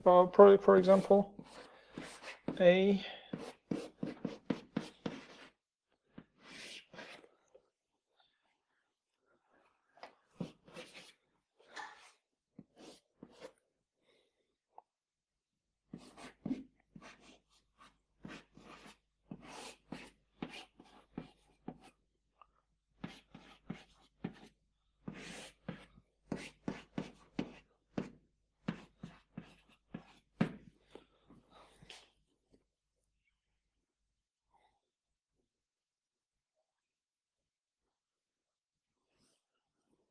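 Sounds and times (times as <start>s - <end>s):
speech: 0.0s - 3.9s
pen drawing a diagram on paper: 0.6s - 5.6s, 6.2s - 7.2s, 10.4s - 11.2s, 11.9s - 13.6s, 15.9s - 21.9s, 23.0s - 30.7s.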